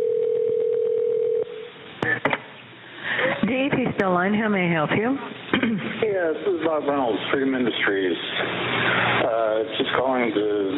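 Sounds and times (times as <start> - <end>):
quick dial beeps and clicks through a tinny phone line: 0.0 - 1.4
steady telephone line tone: 0.0 - 1.7
speech: 3.5 - 10.7.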